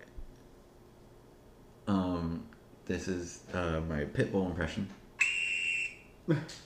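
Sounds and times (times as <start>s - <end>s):
speech: 1.9s - 5.0s, 6.3s - 6.6s
steady high-pitched whistle: 5.2s - 6.2s.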